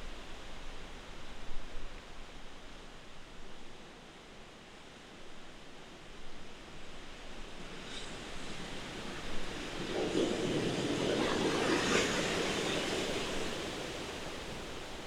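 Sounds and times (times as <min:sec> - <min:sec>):
hydrophone recording of whales: 0:07.7 - 0:14.9.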